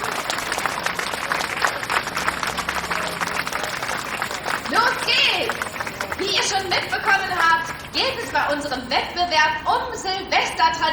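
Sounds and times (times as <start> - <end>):
crowd applauding: 0.0 - 8.6
speech: 6.6 - 10.9.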